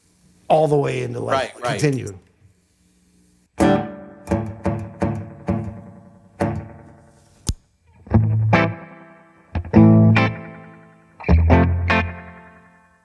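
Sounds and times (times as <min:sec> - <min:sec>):
speech: 0:00.5 - 0:02.3
electric guitar through heavy analog-style chorus with feedback circuit: 0:03.6 - 0:07.1, 0:07.8 - 0:13.0.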